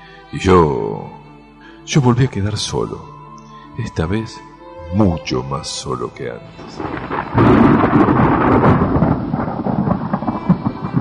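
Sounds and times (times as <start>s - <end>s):
speech: 0.3s - 1.1s, 1.9s - 3.2s, 3.8s - 8.9s
heavy rain: 6.6s - 11.0s.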